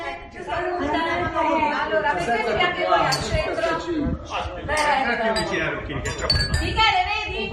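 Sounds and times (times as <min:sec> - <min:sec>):
crowd of neighbours chattering across a street in Italy: 0:00.0 - 0:07.5
glasses clinking in a toast: 0:03.1 - 0:03.4, 0:04.8 - 0:06.8.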